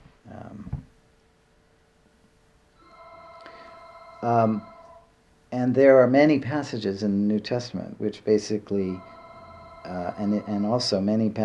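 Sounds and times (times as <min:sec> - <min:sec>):
telephone ringing with a steady electronic tone: 0:02.8 - 0:05.1, 0:08.9 - 0:11.2
speech: 0:04.2 - 0:04.7, 0:05.5 - 0:09.2, 0:09.8 - 0:11.4.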